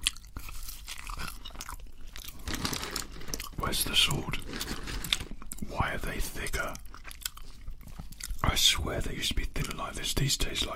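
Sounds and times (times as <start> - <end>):
crunching and chewing thicker-cut fries: 0.0 - 5.8, 6.5 - 8.5
speech: 3.7 - 4.7, 5.7 - 6.8, 8.6 - 10.7.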